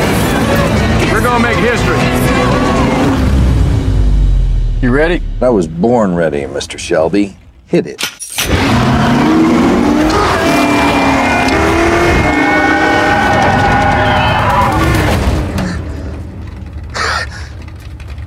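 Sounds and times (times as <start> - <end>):
Ford GT race car engine roaring: 0.0 - 6.6, 8.4 - 18.2
speech: 1.4 - 2.3, 4.8 - 8.8, 9.4 - 9.8
Ford GT race car tires squealing: 8.6 - 16.2.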